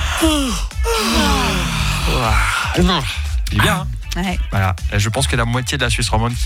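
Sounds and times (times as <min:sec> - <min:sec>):
several people yawning together: 0:00.0 - 0:02.8
speech: 0:00.2 - 0:01.3, 0:02.1 - 0:06.4.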